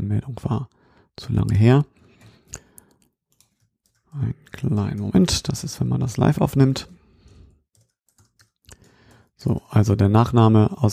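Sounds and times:
speech: 0.1 - 2.0, 4.1 - 7.0, 9.4 - 10.9
typing on a computer keyboard: 2.0 - 5.1, 6.8 - 9.3.

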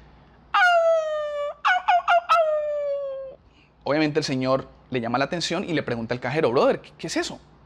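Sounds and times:
person imitating a dog's high-pitched squeal with whines and yelps: 0.6 - 3.4
speech: 3.9 - 7.5.

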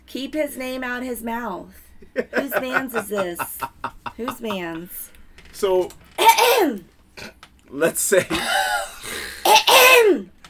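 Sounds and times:
speech: 0.1 - 10.3
laughter: 2.0 - 4.9, 7.9 - 9.4
person clearing throat: 6.2 - 7.4, 8.2 - 10.2
voiced grunt: 8.2 - 9.6.

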